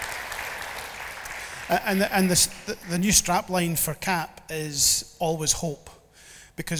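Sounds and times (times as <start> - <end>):
audience applause with many hands clapping: 0.0 - 3.0
speech: 1.7 - 6.0, 6.6 - 6.7.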